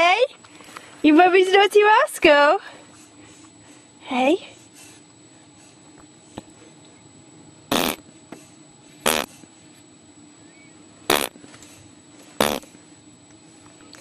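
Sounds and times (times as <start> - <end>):
quiet room hum: 0.0 - 13.9
speech: 1.0 - 2.8, 4.1 - 4.6
buzzy lip raspberries: 7.7 - 8.0.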